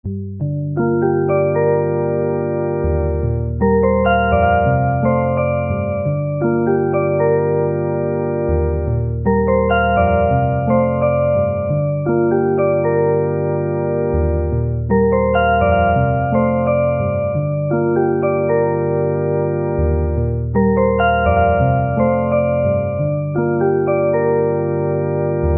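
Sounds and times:
electric piano: 0:00.4 - 0:25.5.

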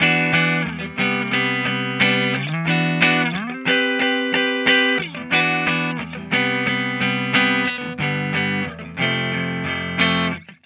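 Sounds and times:
dry guitar chords: 0:00.0 - 0:10.6.

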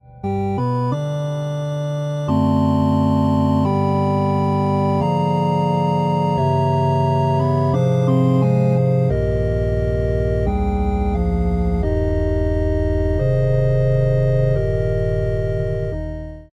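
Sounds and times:
chapel organ: 0:00.2 - 0:16.5.

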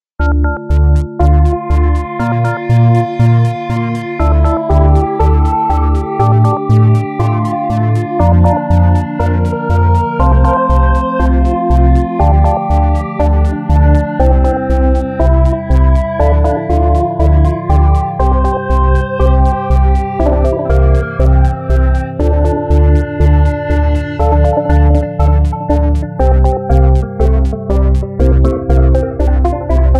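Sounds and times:
synth pad: 0:00.2 - 0:29.9.

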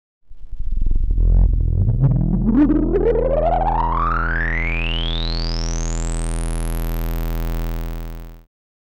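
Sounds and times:
filtered square wave sweep: 0:00.2 - 0:08.5.

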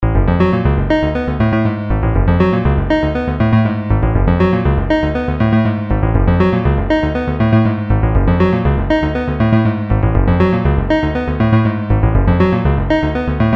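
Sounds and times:
video game sounds: 0:00.0 - 0:13.5.

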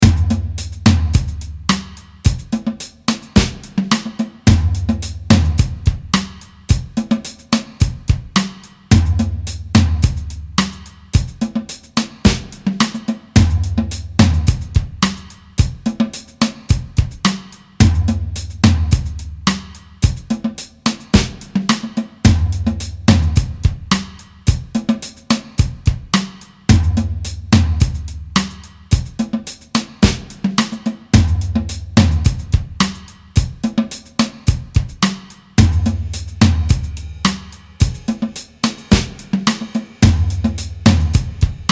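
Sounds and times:
1970s-style drums: 0:00.0 - 0:41.7.

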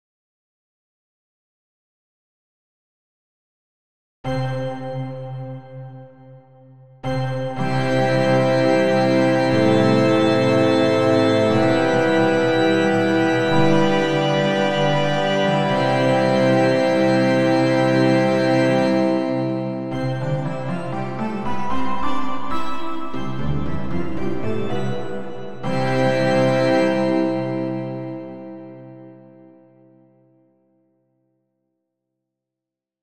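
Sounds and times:
church organ with long reverb: 0:07.1 - 0:29.4.

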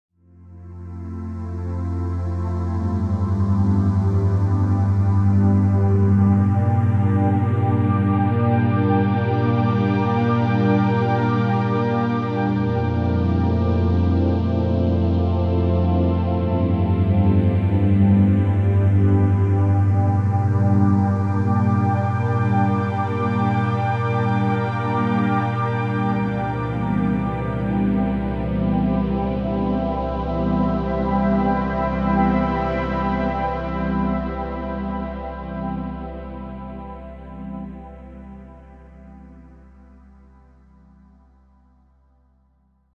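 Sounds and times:
big band analogue synth pads: 0:00.6 - 0:41.3.

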